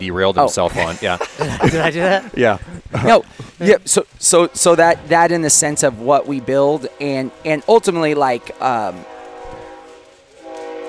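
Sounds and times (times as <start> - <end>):
speech: 0.0 - 9.1
laughter: 0.6 - 3.8
passing train horn blaring: 4.2 - 10.8.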